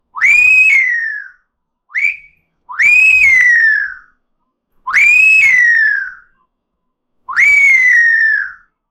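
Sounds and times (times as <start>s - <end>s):
catcall whistle: 0.2s - 4.2s, 4.9s - 6.4s, 7.3s - 8.7s.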